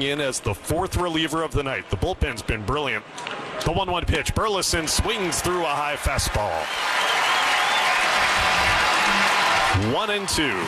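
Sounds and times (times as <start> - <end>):
speech: 0.0 - 7.4, 9.8 - 10.6
large baseball stadium crowd cheering and clapping: 3.6 - 10.6.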